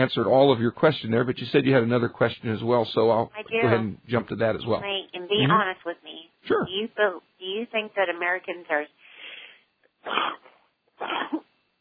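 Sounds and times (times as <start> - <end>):
speech: 0.0 - 9.0, 10.0 - 11.4
person sneezing: 10.0 - 11.5.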